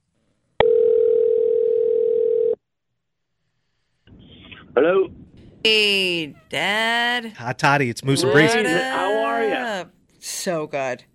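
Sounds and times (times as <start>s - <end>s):
electronic ringback tone from an outgoing phone call: 0.6s - 2.6s
speech: 4.8s - 11.1s.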